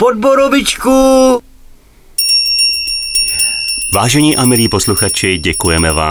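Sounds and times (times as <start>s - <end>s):
speech: 0.0s - 1.4s, 4.0s - 6.0s
small bell ringing: 2.2s - 6.0s.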